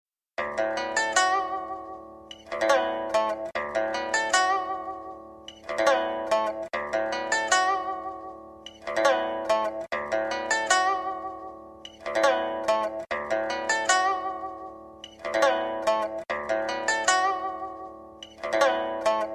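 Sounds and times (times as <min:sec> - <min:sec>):
Japanese guitar: 0:00.4 - 0:19.3.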